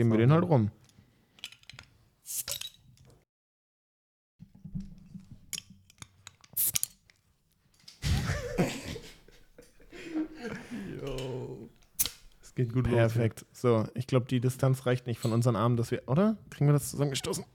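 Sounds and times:
speech: 0.0 - 0.8, 12.6 - 17.5
drink bottles opened with a bottle opener: 2.3 - 2.9, 5.4 - 7.0, 11.9 - 12.4
people laughing: 8.0 - 11.7.

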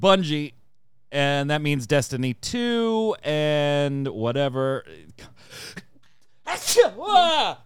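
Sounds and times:
speech: 0.0 - 5.8, 6.5 - 7.6
person inhaling before a sneeze: 5.3 - 6.4
sneeze: 6.5 - 7.0.

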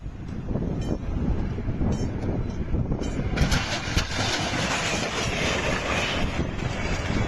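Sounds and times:
passenger train rumbling through a level crossing: 0.0 - 7.2
passenger train striking a truck with harsh metallic grinding: 3.4 - 7.2.

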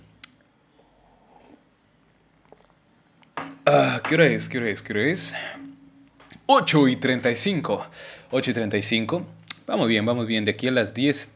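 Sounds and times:
person taking a small sip of water: 0.7 - 2.8
speech: 3.7 - 5.7, 6.5 - 11.3.

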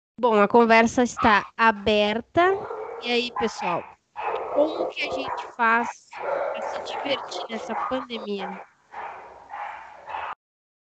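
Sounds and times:
speech: 0.2 - 3.9, 4.6 - 8.7
several neighbor's dogs barking muffled: 1.1 - 1.4, 2.6 - 10.4.

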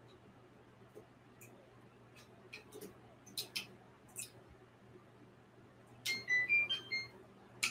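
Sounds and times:
low steady hum: 0.0 - 7.6
kitchen timer going off with high electronic beeps for egg: 6.1 - 7.1.

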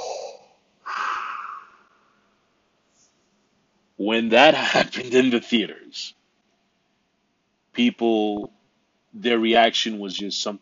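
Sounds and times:
helmet breathing module hissing breaths: 0.0 - 1.9
speech: 4.0 - 6.2, 7.8 - 8.6, 9.2 - 10.6.

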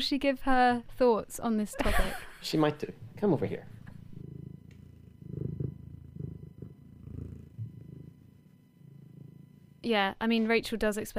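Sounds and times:
speech: 0.0 - 3.8, 9.8 - 11.1
female cat purring into the microphone: 2.7 - 11.1.

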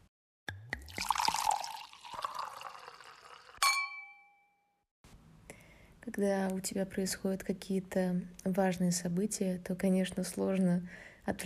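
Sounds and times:
drink pouring into a glass: 0.6 - 3.6
bright ringing clink of glass: 0.9 - 4.6
speech: 6.1 - 11.4.

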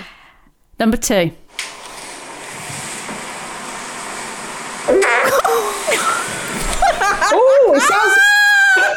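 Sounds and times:
speech: 0.8 - 1.4
long squeaky fart: 5.2 - 7.3
laughter: 5.2 - 8.9.

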